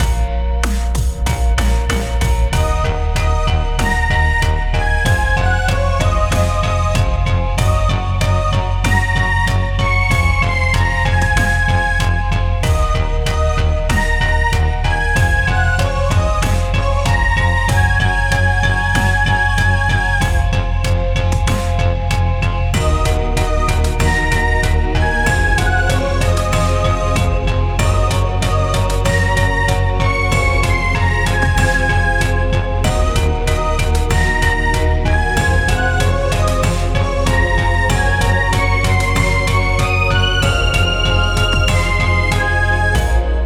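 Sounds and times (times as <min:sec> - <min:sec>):
racing game bad result music at 95 BPM: 0:00.0 - 0:43.4.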